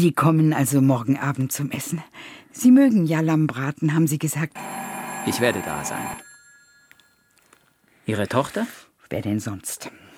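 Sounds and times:
speech: 0.0s - 6.3s, 8.1s - 10.0s
telephone bell ringing: 4.5s - 7.8s.

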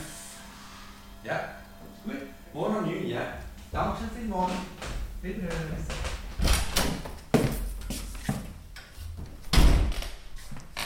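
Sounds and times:
speech: 1.2s - 6.1s
heavy old shop door of a former dairy shop closing: 3.4s - 7.4s, 9.4s - 10.2s.

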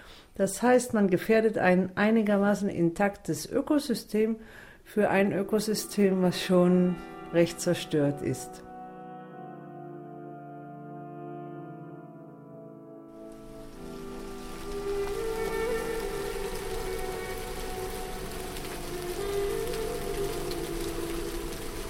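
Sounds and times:
speech: 0.4s - 8.6s
winter rain falling on the ground at Ein Gedi by the Dead Sea: 13.2s - 21.8s.

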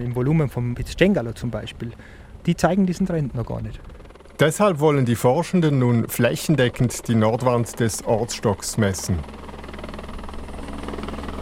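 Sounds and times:
speech: 0.0s - 9.4s
helicopter engine whine: 1.2s - 11.4s
helicopter rotor thumping flying down to the valley: 2.8s - 11.4s.

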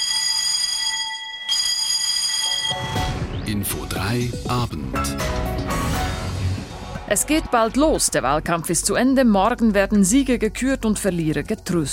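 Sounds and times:
arrival signal bell ringing at a border post in Norway: 0.0s - 3.2s
speech: 3.5s - 6.1s, 7.1s - 11.9s.

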